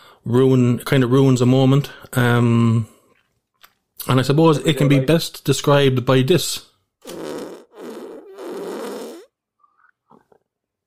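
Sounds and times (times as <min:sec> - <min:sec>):
speech: 0:00.2 - 0:02.9, 0:04.0 - 0:07.2
loud drawn-out raspy farts: 0:07.0 - 0:09.3
faint short squeaky fart sputters: 0:07.0 - 0:10.4.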